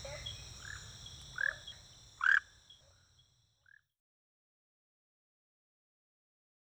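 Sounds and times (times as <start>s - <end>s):
steady high hiss: 0.0s - 2.4s
Rhacophorus smaragdinus tree frog chirping calls: 0.0s - 3.8s.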